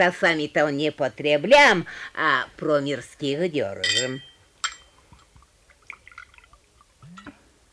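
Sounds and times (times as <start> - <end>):
speech: 0.0 - 4.3
glass clinking: 3.8 - 5.3
vodka pouring into glasses: 4.9 - 7.4.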